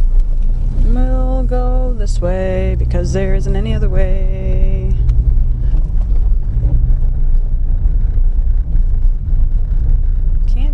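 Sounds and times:
car tire and road noise on an old brick road with grass: 0.0s - 10.7s
speech: 1.5s - 4.7s
wind noise: 2.7s - 10.7s.

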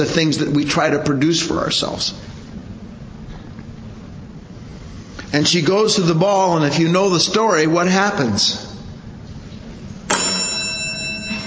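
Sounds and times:
speech: 0.0s - 2.3s, 5.3s - 8.6s
bell ringing with bright tones: 10.1s - 11.4s.

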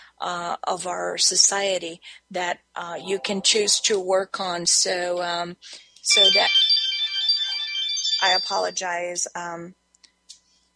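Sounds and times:
speech: 0.2s - 6.6s, 8.2s - 9.8s
phone ringtone with bright electronic melody: 6.1s - 8.8s.

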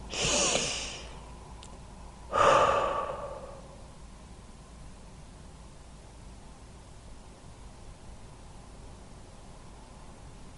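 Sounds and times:
person taking a deep breath in: 0.0s - 1.2s, 2.3s - 3.8s.

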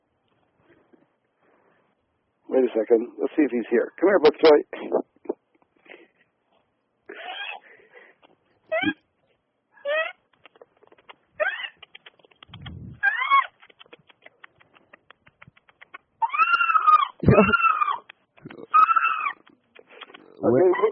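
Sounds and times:
speech: 2.6s - 5.0s
dolphin squeaks and rising and falling squeals: 7.1s - 7.6s, 8.7s - 9.0s, 9.8s - 10.4s, 11.4s - 14.0s, 16.2s - 18.1s, 18.7s - 20.8s
dolphin rapid crackling click trains: 10.3s - 16.1s.

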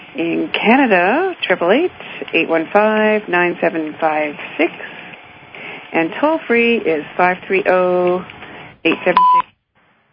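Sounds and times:
speech: 0.2s - 4.9s, 5.9s - 9.4s
short electronic beep on a phone-in radio show: 9.1s - 9.5s.

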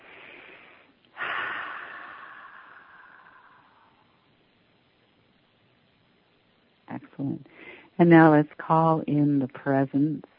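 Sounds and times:
sudden louder inhale or sniff: 0.0s - 3.7s
deep breathing during a guided relaxation: 0.0s - 4.2s
speech: 7.0s - 10.3s.

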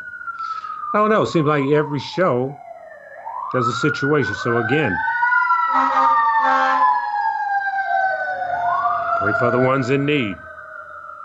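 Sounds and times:
fire truck siren wailing: 0.0s - 11.2s
speech: 0.9s - 2.6s, 3.5s - 5.1s, 9.2s - 10.5s
fire truck horn blasts: 5.7s - 6.8s.

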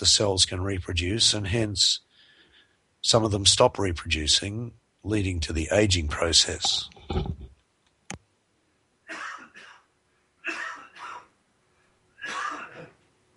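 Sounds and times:
speech: 0.0s - 2.1s, 3.0s - 7.4s
coughing fit with harsh coughs: 9.1s - 11.4s, 12.2s - 13.1s.

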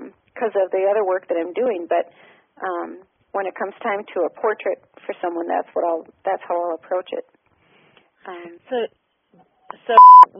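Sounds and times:
speech: 0.4s - 7.4s, 8.2s - 10.3s
phone line beep signaling incoming caller: 10.0s - 10.3s.

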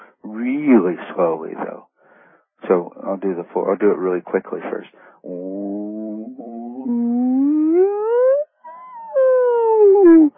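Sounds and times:
speech: 0.5s - 1.9s, 2.6s - 7.1s
human voice doing a frequency sweep: 5.2s - 10.3s.

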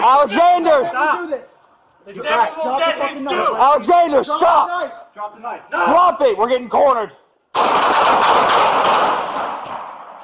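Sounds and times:
speech: 0.0s - 9.9s
police officers' gunfire volley during a shooting: 7.5s - 10.2s.

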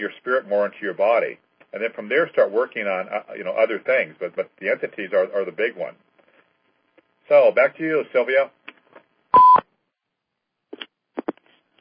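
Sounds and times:
speech: 0.0s - 6.1s, 7.3s - 8.6s
electronic conference call join beep: 9.4s - 9.6s.

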